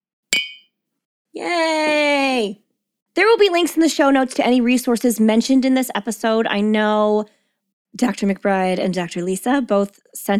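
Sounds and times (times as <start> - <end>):
glasses clinking in a toast: 0.4 - 0.7
speech: 1.3 - 2.6, 3.2 - 10.3.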